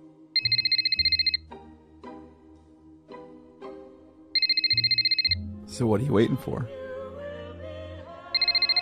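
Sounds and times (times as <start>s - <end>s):
telephone ringing with a loud rapid electronic trill: 0.4s - 1.4s, 4.4s - 5.4s, 8.4s - 8.8s
speech: 5.8s - 6.8s.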